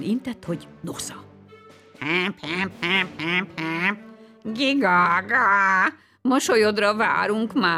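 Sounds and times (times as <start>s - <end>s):
speech: 0.0s - 1.3s, 2.0s - 7.7s
duck quacking: 2.0s - 4.1s
goose honking: 2.0s - 4.1s.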